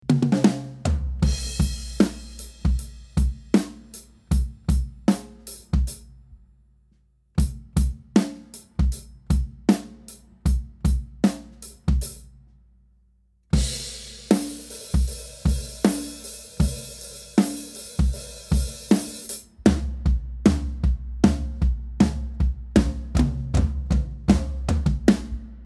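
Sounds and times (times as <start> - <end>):
tom drums: 0.0 - 6.2, 7.4 - 12.5, 13.6 - 25.6
snare drum recorded from the bottom: 0.1 - 6.0, 13.6 - 25.6.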